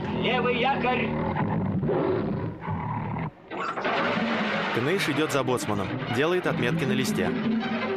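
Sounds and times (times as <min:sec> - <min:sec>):
tigers roaring crowded at cage bars: 0:00.0 - 0:04.2
speech: 0:00.2 - 0:02.4, 0:03.6 - 0:07.8.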